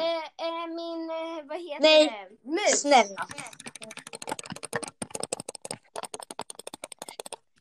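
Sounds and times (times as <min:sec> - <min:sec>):
speech: 0:01.6 - 0:03.6
computer keyboard keys clicking: 0:03.2 - 0:07.5.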